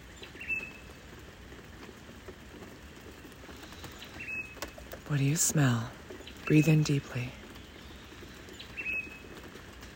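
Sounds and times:
bird chirp: 0.0s - 1.0s, 3.1s - 9.9s
rain falling: 0.0s - 9.9s
speech: 5.1s - 7.4s.

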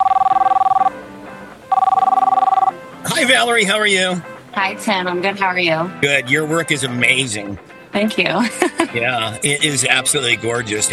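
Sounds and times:
telephone ringing on an outgoing call: 0.0s - 1.0s, 1.7s - 2.8s
speech: 3.2s - 10.9s.

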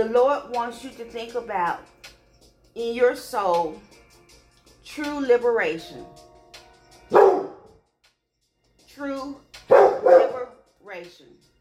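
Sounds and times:
speech: 0.0s - 2.0s, 2.8s - 4.0s, 4.9s - 6.2s, 9.0s - 9.5s, 10.9s - 11.4s
dog barking: 7.1s - 7.7s, 9.7s - 10.5s.

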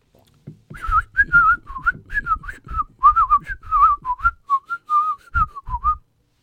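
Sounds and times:
faint low thumps or handling noise: 0.4s - 4.2s
person whistling imitating a whistled language: 0.7s - 6.1s.

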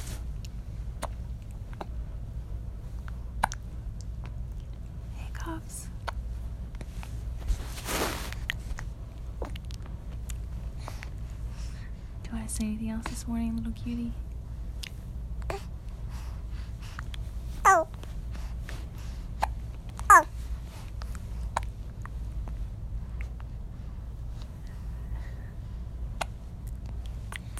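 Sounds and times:
hum: 0.0s - 27.5s
speech: 12.5s - 14.3s
baby hiccuping: 17.7s - 17.9s, 20.1s - 20.3s.

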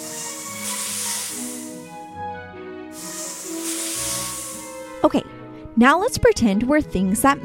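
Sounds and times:
snake hissing: 0.0s - 2.1s, 3.0s - 5.0s
speech: 5.0s - 7.4s.

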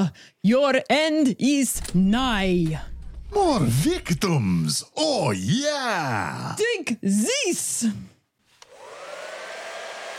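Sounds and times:
speech: 0.0s - 8.1s
hair dryer blowing to melt ice: 8.6s - 10.1s.

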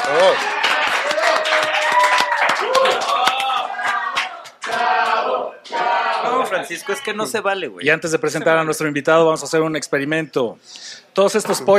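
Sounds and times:
crowd clapping: 0.0s - 6.6s
speech: 6.6s - 11.7s.

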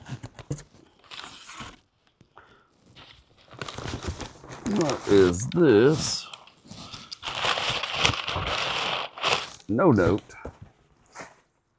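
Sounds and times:
speech: 4.8s - 6.2s, 9.7s - 10.4s
knife cutting through a freshly opened package: 6.9s - 9.6s.

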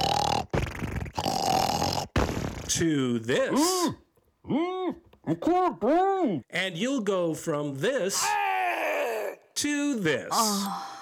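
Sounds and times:
loud harsh rasping snoring: 0.0s - 2.7s
speech: 2.7s - 8.4s, 9.6s - 10.9s.

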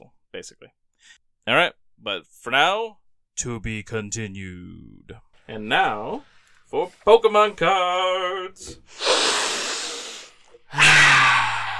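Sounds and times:
speech: 0.4s - 9.4s
person sniffing trading cards close to microphone: 8.6s - 10.6s.

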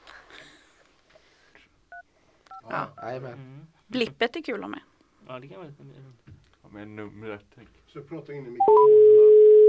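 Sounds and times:
speech: 2.7s - 9.3s
telephone keypad tone beep: 8.6s - 9.6s.

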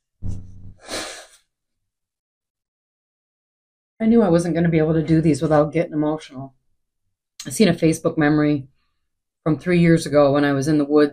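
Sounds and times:
nose blowing: 0.2s - 1.4s
speech: 4.0s - 6.6s, 7.4s - 8.7s, 9.4s - 11.1s.

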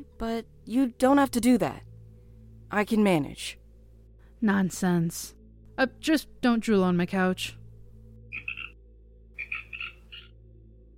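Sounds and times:
speech: 0.0s - 1.9s, 2.7s - 3.6s, 4.4s - 7.6s
steady low hum: 0.0s - 10.9s
bullfrog croaking: 8.3s - 8.8s, 9.4s - 10.4s.

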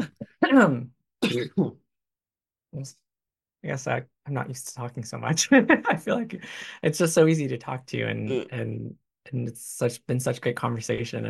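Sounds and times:
speech: 0.0s - 1.8s, 2.7s - 3.0s, 3.6s - 11.2s
person coughing: 1.2s - 1.7s
person clearing throat: 1.2s - 1.8s, 8.3s - 8.6s.

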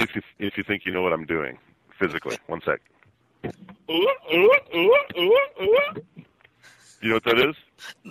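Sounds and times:
speech: 0.0s - 6.3s, 7.0s - 8.0s
person imitating barks of a performing circus seal: 3.9s - 6.0s.

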